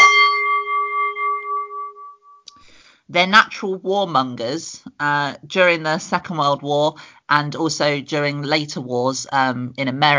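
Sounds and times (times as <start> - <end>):
single bell struck and ringing: 0.0 - 2.4
speech: 3.1 - 10.1.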